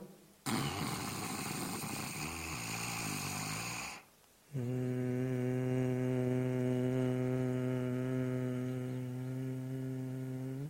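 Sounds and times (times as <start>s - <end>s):
person doing a voice exercise taking a rasping snore-like breath in: 0.5s - 5.2s
person doing a voice exercise exhaling with a buzzing bee-like hum: 0.5s - 10.6s.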